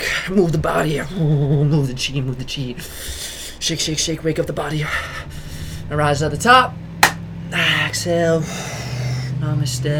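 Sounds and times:
speech: 0.2 - 6.8, 7.5 - 8.7, 9.4 - 9.9
car passing outside: 3.8 - 9.9.

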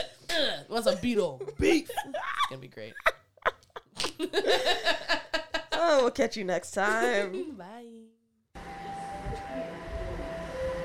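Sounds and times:
speech: 0.4 - 3.1, 4.2 - 5.2, 5.8 - 8.2
laughter: 1.4 - 5.9
train arriving at a station: 8.6 - 10.8.

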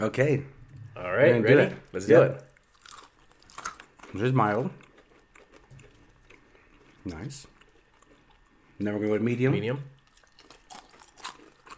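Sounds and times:
speech: 0.0 - 2.5, 4.1 - 4.8, 7.0 - 7.5, 8.8 - 10.0
someone biting and chewing medium-heat beef jerky: 2.6 - 8.4, 10.0 - 11.7.

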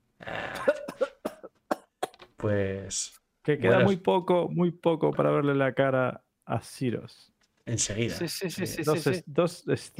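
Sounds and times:
person coughing: 0.3 - 2.2
speech: 2.4 - 9.9.

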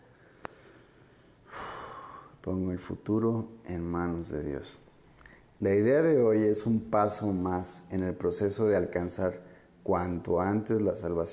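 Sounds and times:
deep slow inhale during a guided spiritual lesson: 0.0 - 2.4
speech: 2.4 - 4.9, 5.6 - 11.3.

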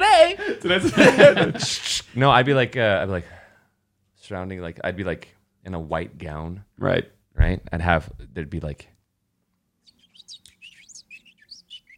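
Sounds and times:
laughter: 0.6 - 2.0
speech: 0.6 - 3.4, 4.3 - 8.9
chorus of birds chirping: 9.8 - 11.9.

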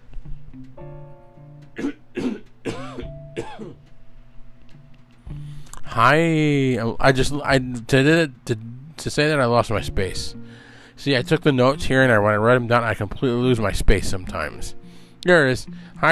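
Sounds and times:
person coughing: 1.8 - 3.8
throat clearing: 1.8 - 3.8
speech: 6.0 - 10.4, 11.0 - 16.1.

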